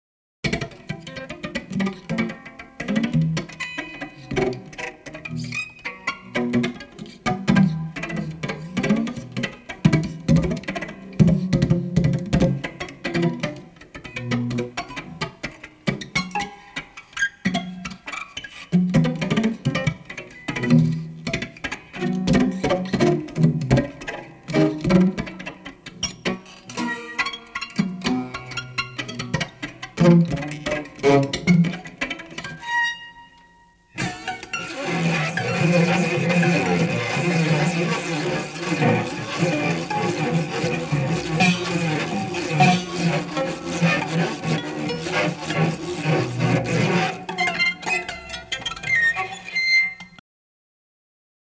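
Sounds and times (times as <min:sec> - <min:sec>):
19 string violin playing: 0:00.5 - 0:16.9, 0:18.9 - 0:49.6.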